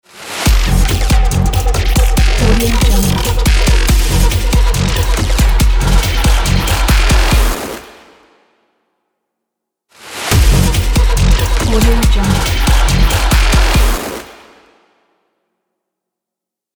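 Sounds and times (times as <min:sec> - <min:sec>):
glitch beat logo intro: 0:00.5 - 0:07.6, 0:10.3 - 0:14.2.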